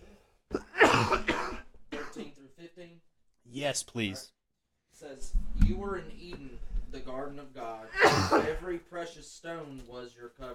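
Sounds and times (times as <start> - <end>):
harsh coughing: 0.5 - 2.4, 7.9 - 8.6
speech: 1.0 - 1.4, 3.5 - 4.4, 5.0 - 10.5.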